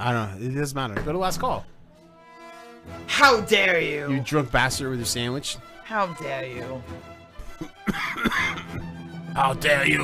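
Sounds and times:
speech: 0:00.0 - 0:01.8, 0:02.8 - 0:08.8, 0:09.4 - 0:10.0
person coughing after singing death metal: 0:07.5 - 0:08.8.

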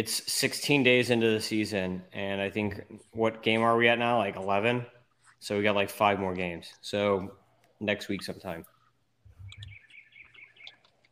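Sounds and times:
speech: 0:00.0 - 0:08.7
birds chirping: 0:08.2 - 0:11.0.

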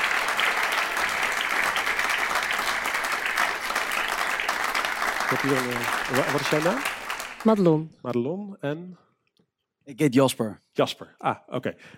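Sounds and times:
crowd applauding: 0:00.0 - 0:07.6
speech: 0:05.3 - 0:09.0, 0:09.8 - 0:11.9.

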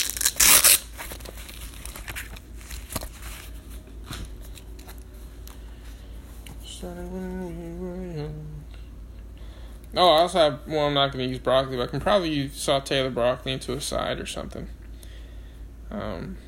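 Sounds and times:
paper notepad tearing crinkle: 0:00.0 - 0:05.0
paper notepad rustling: 0:00.0 - 0:06.2
speech: 0:06.8 - 0:07.8, 0:10.0 - 0:14.8, 0:15.9 - 0:16.4.

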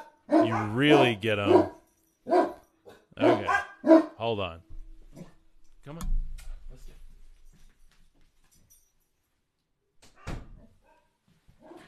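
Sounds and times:
dog barking: 0:00.0 - 0:04.2
speech: 0:00.4 - 0:02.5, 0:03.2 - 0:04.7, 0:05.8 - 0:06.2.

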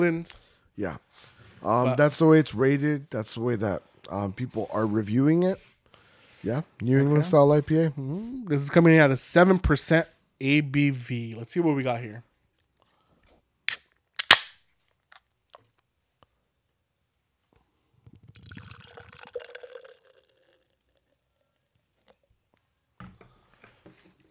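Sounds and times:
speech: 0:00.0 - 0:05.7, 0:06.4 - 0:12.3
can tab cracking open: 0:13.7 - 0:15.6
beer pouring into a glass: 0:18.2 - 0:21.2.

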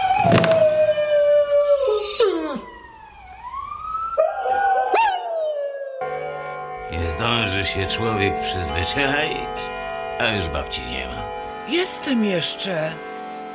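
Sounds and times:
dog howling: 0:00.0 - 0:02.9, 0:04.2 - 0:06.1
speech: 0:07.6 - 0:13.1.

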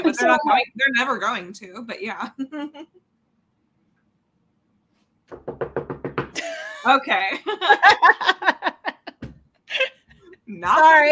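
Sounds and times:
speech: 0:00.0 - 0:03.0, 0:06.8 - 0:08.7, 0:10.5 - 0:11.0
sharp knocks on wood: 0:05.3 - 0:06.4, 0:09.2 - 0:09.5
laughter: 0:06.4 - 0:10.0.

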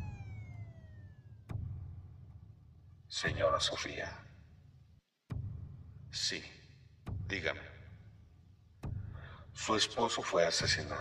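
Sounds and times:
police patrol car siren winding down at a house: 0:00.0 - 0:01.4
speech: 0:03.1 - 0:04.3, 0:06.2 - 0:06.6, 0:07.3 - 0:07.8, 0:09.6 - 0:10.9.

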